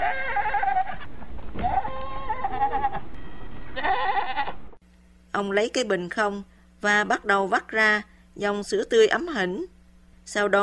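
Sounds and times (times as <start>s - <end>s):
female goat bleating in the back of a vehicle: 0.0s - 3.1s, 3.8s - 4.6s
steady low hum: 0.0s - 10.6s
speech: 5.4s - 9.7s, 10.3s - 10.6s.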